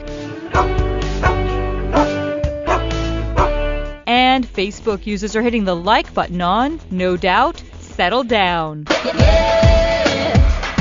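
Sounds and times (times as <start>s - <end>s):
bouncy pop backing track: 0.0s - 10.7s
dogs barking and howling in time: 0.5s - 3.6s
speech: 4.3s - 9.6s.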